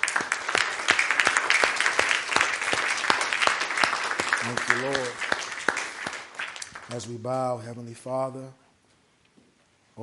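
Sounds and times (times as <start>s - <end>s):
audience applauding: 0.0s - 7.2s
speech: 4.5s - 5.2s, 6.9s - 8.6s.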